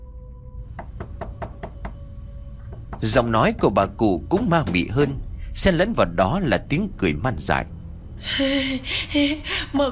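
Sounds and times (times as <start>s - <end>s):
low steady hum: 0.0s - 9.9s
knocking on a door: 0.7s - 5.2s
speech: 3.0s - 9.9s.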